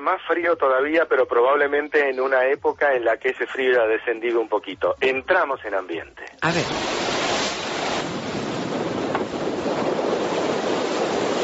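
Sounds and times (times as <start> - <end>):
speech: 0.0 - 7.2
rough choppy sea churning in a cold storm: 6.4 - 11.4
gusting wind roaring over the surf: 6.6 - 11.4.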